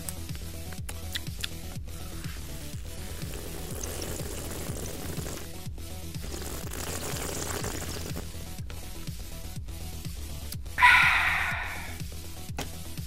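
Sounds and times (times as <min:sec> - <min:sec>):
music track with a regular low beat: 0:00.0 - 0:13.0
water pouring: 0:02.7 - 0:05.5, 0:06.2 - 0:08.3.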